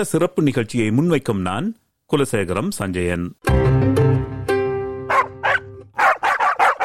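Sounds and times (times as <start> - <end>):
speech: 0.0 - 4.3
dog barking: 5.1 - 6.8.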